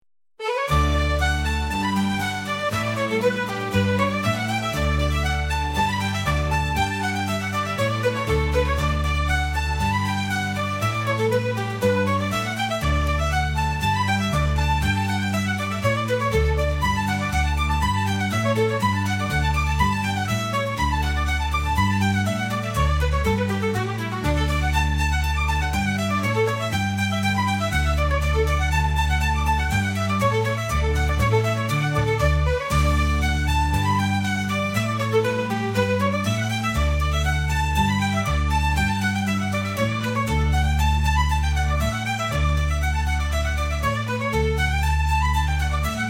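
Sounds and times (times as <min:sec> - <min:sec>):
bagpipes: 0:00.4 - 0:46.0.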